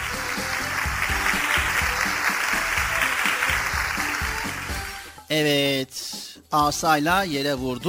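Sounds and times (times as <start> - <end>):
room full of people clapping: 0.0 - 5.1
speech: 5.3 - 7.8.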